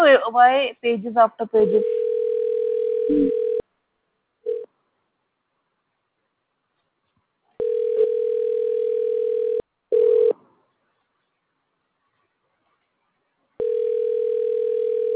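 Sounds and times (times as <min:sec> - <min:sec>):
speech: 0:00.0 - 0:02.0, 0:03.1 - 0:03.5
telephone ringing tone during a call: 0:01.7 - 0:03.6, 0:04.5 - 0:04.7, 0:07.6 - 0:10.4, 0:13.6 - 0:15.1.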